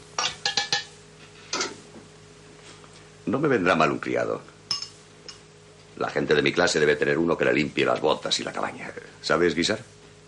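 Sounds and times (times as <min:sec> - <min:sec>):
ladle clinking against a soup pot on the fire in a cabin: 0:00.2 - 0:00.9
speech: 0:03.3 - 0:04.6, 0:06.0 - 0:09.9.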